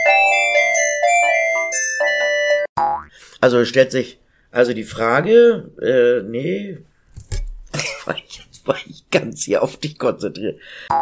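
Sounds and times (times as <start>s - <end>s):
telephone ringing with a melodic electronic ringtone: 0.0s - 2.7s
speech: 3.4s - 6.9s, 8.1s - 11.0s.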